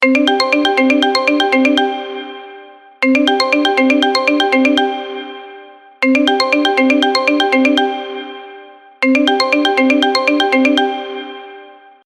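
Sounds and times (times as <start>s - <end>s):
marimba ringtone: 0.0s - 11.8s.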